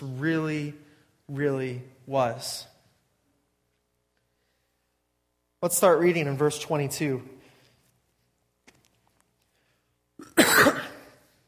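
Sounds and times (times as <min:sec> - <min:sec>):
speech: 0:00.0 - 0:02.7, 0:05.6 - 0:07.4
short harsh cough into a microphone: 0:10.2 - 0:11.2.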